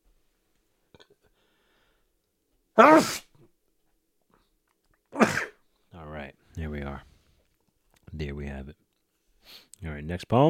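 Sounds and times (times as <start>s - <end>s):
speech: 2.8s - 3.2s, 9.8s - 10.4s
person sneezing: 2.8s - 3.4s, 5.1s - 5.6s.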